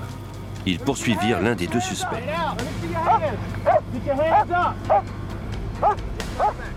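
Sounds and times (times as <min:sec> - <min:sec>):
speech: 0:00.7 - 0:05.2, 0:05.8 - 0:06.7
police dog barking while tracking a suspect: 0:03.1 - 0:05.1, 0:05.8 - 0:06.7.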